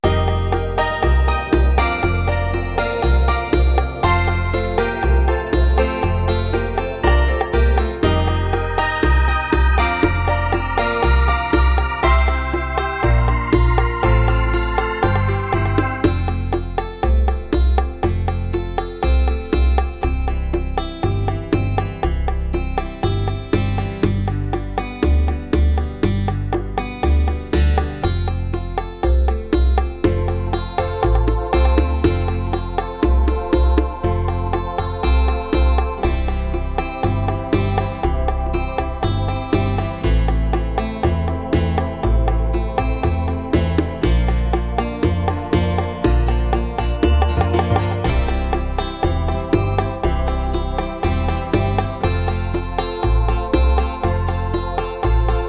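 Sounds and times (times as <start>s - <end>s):
bachata rhythms: 0.0s - 55.4s.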